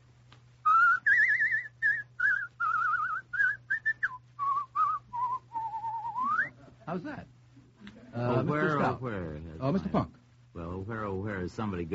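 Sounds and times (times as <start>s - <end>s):
faint steady low hum: 0.0s - 11.9s
person whistling a folk melody: 0.6s - 6.6s
speech: 6.9s - 7.4s, 8.1s - 10.2s, 10.8s - 11.9s.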